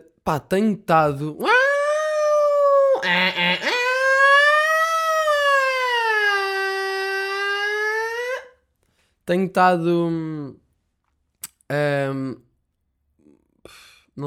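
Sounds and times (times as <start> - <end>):
speech: 0.2 - 1.6, 3.0 - 3.7, 9.3 - 10.6, 11.7 - 12.5, 13.7 - 14.2
voice imitating an ambulance siren: 1.4 - 8.6.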